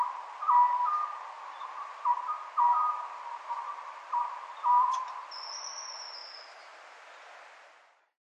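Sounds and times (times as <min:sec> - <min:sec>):
Oriental scops owl calling with hollow notes at Nikko: 0:00.0 - 0:06.5.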